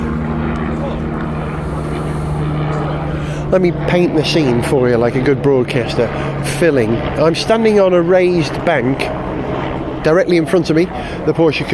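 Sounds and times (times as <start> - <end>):
helicopter flying over a motor racing circuit: 0.0 - 11.7
speech: 3.5 - 9.2, 10.0 - 11.7.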